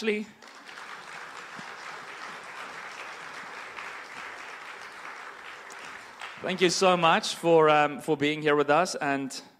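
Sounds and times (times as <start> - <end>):
speech: 0.0 - 0.4, 6.4 - 9.5
audience applause welcoming a speaker: 0.4 - 7.3.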